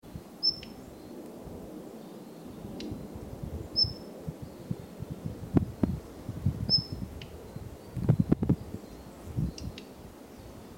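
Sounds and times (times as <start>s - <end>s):
jobitaki bird: 0.4s - 1.2s, 1.9s - 4.8s, 6.7s - 10.6s.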